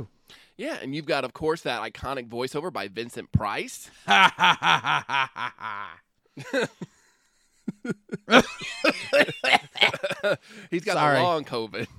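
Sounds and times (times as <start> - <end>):
speech: 0.0 - 6.9, 7.8 - 11.9
person laughing in voiced chuckles: 4.1 - 10.5.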